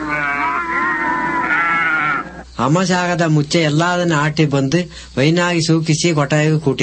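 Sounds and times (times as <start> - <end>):
herd of goats bleating: 0.0 - 2.5
speech: 2.6 - 6.8.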